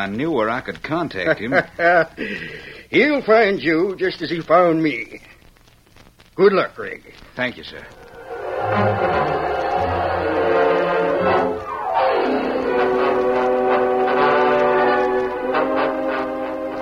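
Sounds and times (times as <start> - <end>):
speech: 0.0 - 5.3, 6.4 - 8.0
company train rolling with a steady mechanical rumble: 8.0 - 16.8.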